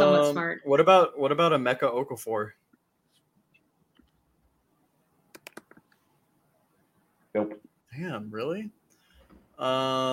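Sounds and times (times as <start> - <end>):
speech: 0.3 - 2.6, 7.4 - 8.8, 9.6 - 10.1
computer keyboard typing: 5.4 - 5.9.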